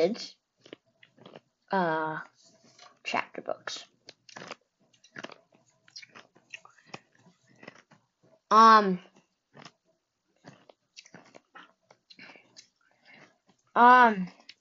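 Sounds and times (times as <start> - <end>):
speech: 0.0 - 0.4, 1.7 - 2.3, 3.1 - 4.6, 8.5 - 9.1, 13.8 - 14.4
person chewing and crunching candy: 0.6 - 1.5, 4.0 - 8.0, 9.1 - 9.8, 10.4 - 13.4.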